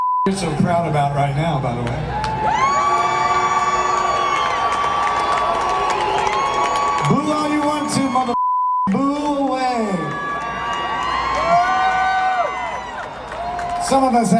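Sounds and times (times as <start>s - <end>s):
speech: 0.2s - 2.7s, 13.9s - 14.3s
concert crowd cheering and whooping: 2.0s - 8.4s, 9.2s - 14.3s.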